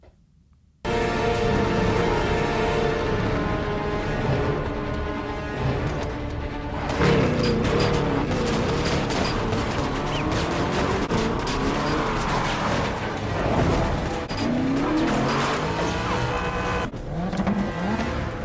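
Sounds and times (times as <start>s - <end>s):
car engines roaring, revving and accelerating in a film car chase: 0.9s - 18.4s
car tires skidding and squealing in a film car chase: 1.1s - 18.4s.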